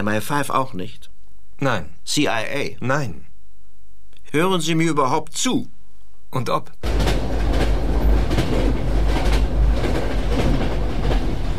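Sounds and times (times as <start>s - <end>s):
speech: 0.0s - 3.3s, 4.3s - 7.0s
passenger train running on rails from Scotland to London: 6.8s - 11.5s
rhythmic clickety-clack train wheel beats: 6.8s - 11.5s.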